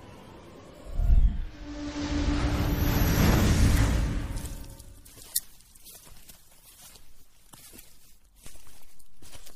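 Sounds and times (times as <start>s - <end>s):
loud rushing whoosh: 0.8s - 5.0s
scuffing footsteps of a man walking: 5.0s - 9.5s.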